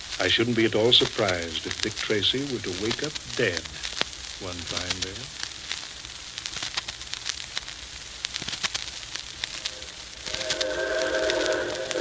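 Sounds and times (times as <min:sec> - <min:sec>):
speech: 0:00.2 - 0:05.4
Hudson type 4-6-4 steam locomotive arriving with chuffing and hiss: 0:09.8 - 0:11.9.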